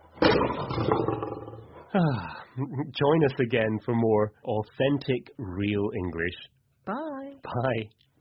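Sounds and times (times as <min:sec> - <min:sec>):
lion roaring: 0:00.0 - 0:01.8
speech: 0:01.9 - 0:08.0.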